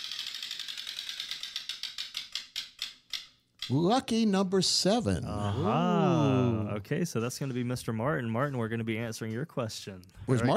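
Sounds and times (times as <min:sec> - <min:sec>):
spun prize wheel clicking against its pointer: 0:00.0 - 0:03.9
speech: 0:03.7 - 0:10.5.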